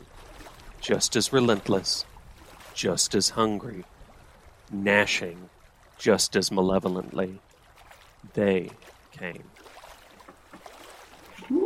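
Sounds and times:
water sloshing inside a small boat as it is bailed out: 0.0 - 11.6
speech: 0.8 - 2.1, 2.8 - 3.9, 4.7 - 7.5, 8.2 - 9.6.

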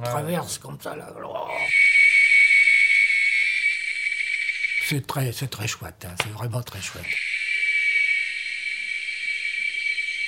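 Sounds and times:
speech: 0.0 - 2.0, 4.9 - 7.3
dense chorus of seven cicada species buzzing in Veracruz state Mexico: 1.7 - 5.5, 6.8 - 10.2
shrill cicada tone: 1.7 - 10.2.

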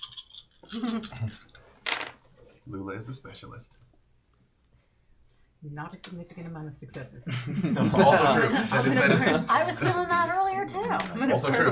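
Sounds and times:
handful of plastic dice rattling and clattering: 0.0 - 2.2
speech: 0.8 - 1.6, 2.6 - 3.9, 5.6 - 11.7
laughter: 7.3 - 11.7.

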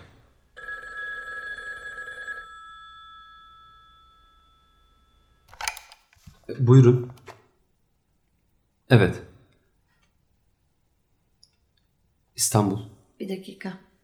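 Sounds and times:
old telephone bell ringing: 0.6 - 5.5
speech: 6.5 - 7.2, 8.9 - 9.3, 12.4 - 13.9.

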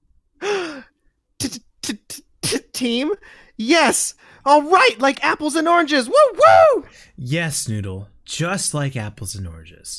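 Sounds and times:
performer in character gasping: 0.4 - 1.0, 3.2 - 3.6
speech: 1.5 - 2.0, 2.8 - 9.9.

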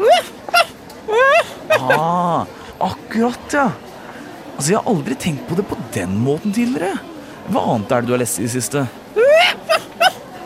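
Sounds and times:
dog whimpering in wavering whines: 0.0 - 2.2, 9.2 - 10.2
laughter: 0.0 - 3.0, 9.2 - 10.3
speech: 1.8 - 3.9, 4.6 - 9.0.

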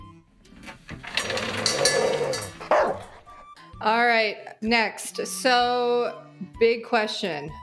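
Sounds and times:
dog barking and yelping: 2.1 - 3.4
speech: 3.8 - 7.6.

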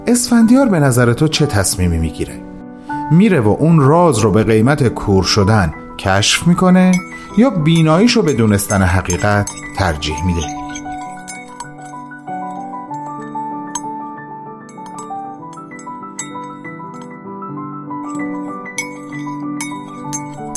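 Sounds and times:
soft piano-like music: 0.0 - 20.5
speech: 0.1 - 2.5, 3.1 - 10.6
small spoons clinking against crystal glasses while stirring tea: 6.9 - 14.0, 14.7 - 17.2, 18.0 - 20.5.

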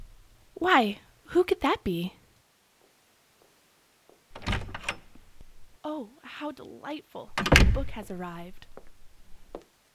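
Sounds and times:
speech: 0.6 - 2.2, 6.0 - 8.7
heavy thuds on a door: 7.4 - 7.9.

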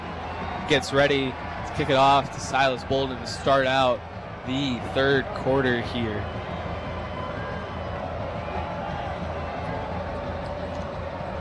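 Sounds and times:
large football stadium crowd cheering: 0.0 - 11.4
speech: 0.7 - 6.4.

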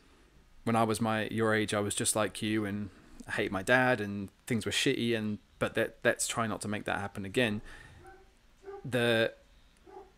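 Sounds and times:
speech: 0.7 - 7.8, 8.8 - 9.4
single sharp dog bark: 8.0 - 9.0, 9.8 - 10.1.

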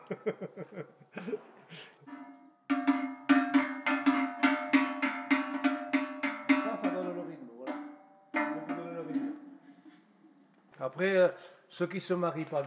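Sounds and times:
laughter: 0.0 - 2.1
speech: 0.1 - 1.9, 10.8 - 12.6
Savoie-style cowbell clanking: 2.1 - 9.8.

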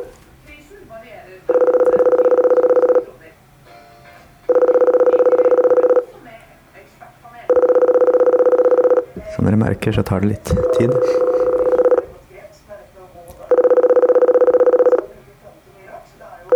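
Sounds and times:
call tone from a silver aluminium intercom box: 0.0 - 0.2, 1.4 - 6.3, 7.4 - 12.4, 13.4 - 15.2
speech: 9.6 - 11.3.

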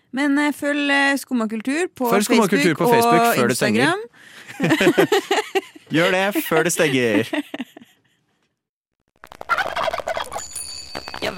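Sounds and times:
speech: 0.1 - 7.6
laughter: 2.1 - 3.8, 4.4 - 8.1
turkey gobble with glitchy digital distortion: 9.3 - 10.4.

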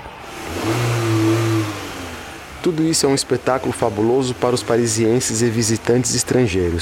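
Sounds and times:
racing car engine revving and accelerating at automobile races in Paris: 0.0 - 6.8
speech: 2.6 - 6.8.

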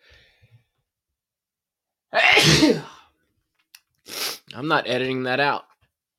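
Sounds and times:
soft breathy inhale: 0.0 - 0.6
loud explosive sneeze: 2.1 - 3.0
speech: 2.5 - 2.9, 4.6 - 5.7.

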